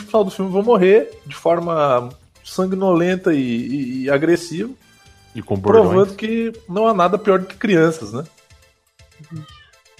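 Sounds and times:
speech: 0.1 - 8.4, 9.2 - 9.9
cat meowing: 9.2 - 9.9.

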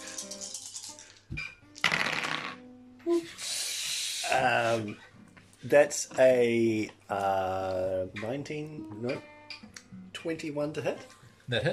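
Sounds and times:
pool of many plastic dice rolling: 0.0 - 1.1, 1.8 - 2.6
speech: 4.3 - 9.3, 10.2 - 11.7.

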